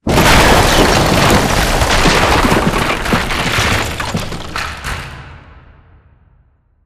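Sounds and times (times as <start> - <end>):
rock explosion: 0.0 - 5.0.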